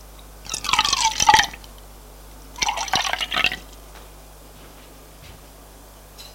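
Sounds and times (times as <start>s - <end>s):
drinking water being poured: 0.5s - 1.6s, 2.6s - 3.6s.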